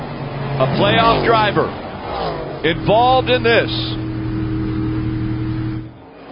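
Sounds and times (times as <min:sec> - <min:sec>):
stock car engines racing on a track: 0:00.0 - 0:06.3
speech: 0:00.6 - 0:04.0.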